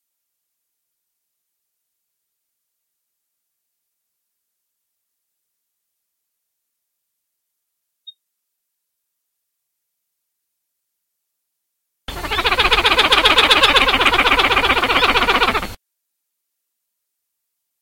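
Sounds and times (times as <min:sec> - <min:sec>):
pied-billed grebe Podilymbus podiceps rattling call: 0:12.1 - 0:15.8.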